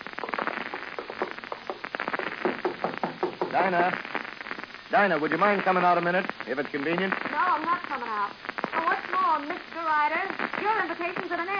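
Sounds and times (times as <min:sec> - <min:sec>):
hiss: 0:00.0 - 0:11.5
knocking on a door: 0:02.4 - 0:03.6
speech: 0:03.6 - 0:04.2, 0:04.9 - 0:11.5.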